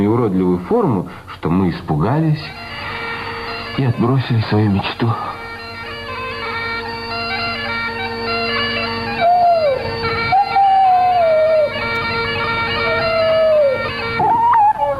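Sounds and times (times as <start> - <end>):
speech: 0.0 - 3.0, 3.8 - 5.4
sustained instrumental music: 1.6 - 14.9
dog howling in long wavering cries: 8.4 - 14.9.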